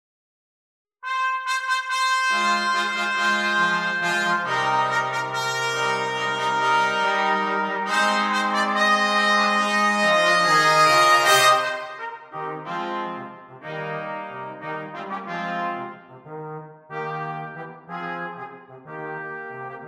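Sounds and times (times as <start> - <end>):
brass quartet playing: 1.0 - 19.8.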